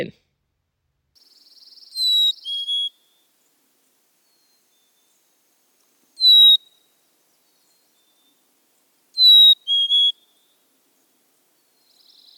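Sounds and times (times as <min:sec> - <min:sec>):
Black-capped Chickadee whistled fee-bee song: 0:01.2 - 0:03.3, 0:06.2 - 0:08.4, 0:09.2 - 0:10.6, 0:11.6 - 0:12.3.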